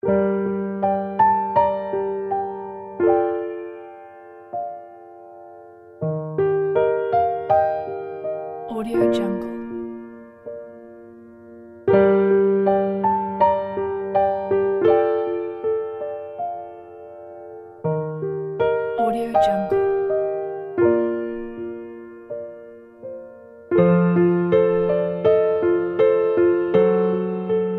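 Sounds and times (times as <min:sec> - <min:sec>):
sad melancholic piano music: 0:00.0 - 0:27.7.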